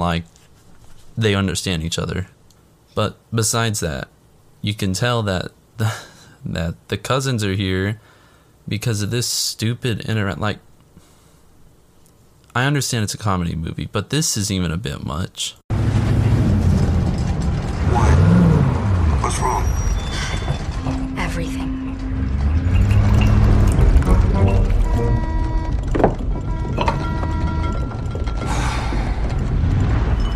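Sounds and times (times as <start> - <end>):
speech: 0.0 - 0.4, 1.2 - 2.4, 3.0 - 8.1, 8.7 - 10.7, 12.5 - 15.6, 19.3 - 19.8
Ford F-1000 pickup truck engine rumbling and revving: 15.7 - 30.3
creaking and rattling mechanical noises: 15.8 - 30.3.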